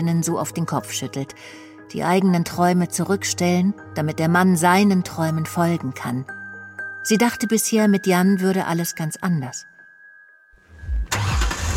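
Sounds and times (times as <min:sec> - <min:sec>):
speech: 0:00.0 - 0:06.4, 0:07.0 - 0:09.7
car engine cranking and starting: 0:10.7 - 0:11.7.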